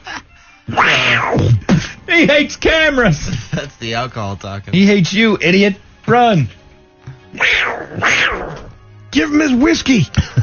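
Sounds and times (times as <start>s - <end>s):
speech: 0.7s - 6.6s, 9.2s - 10.4s
big wild cat snarling: 7.3s - 8.7s.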